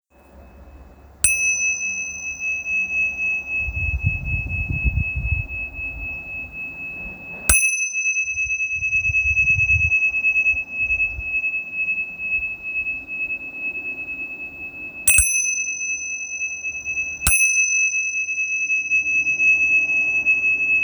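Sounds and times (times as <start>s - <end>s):
small bronze Tibetan cymbals ringing: 0.2s - 20.8s.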